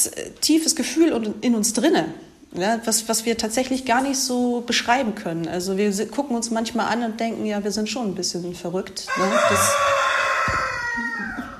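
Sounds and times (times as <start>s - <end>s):
speech: 0.0s - 10.1s
plantation rooster crowing: 9.1s - 11.5s.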